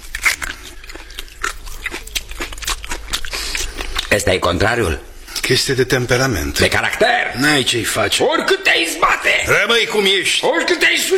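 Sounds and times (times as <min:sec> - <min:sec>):
crunchy biting and chewing of a raw carrot: 0:00.0 - 0:04.3
speech: 0:04.1 - 0:11.1.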